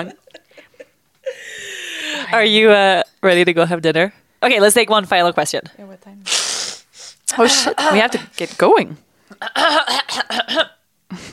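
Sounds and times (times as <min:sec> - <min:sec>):
speech: 0:00.0 - 0:00.2, 0:02.3 - 0:06.4, 0:07.3 - 0:11.3
stuffy-nosed woman clearing her throat: 0:07.3 - 0:08.3, 0:09.4 - 0:10.8.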